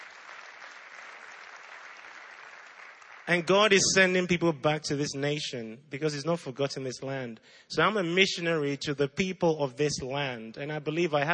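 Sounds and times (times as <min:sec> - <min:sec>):
crowd applause: 0:00.0 - 0:04.0
speech: 0:03.3 - 0:11.3.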